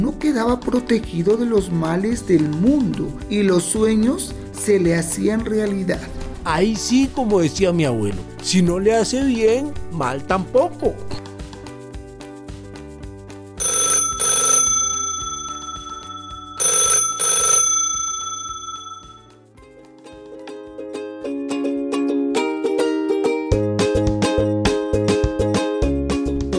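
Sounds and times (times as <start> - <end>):
speech: 0.0 - 11.2
music: 0.0 - 26.5
telephone bell ringing for an incoming call: 13.6 - 19.4.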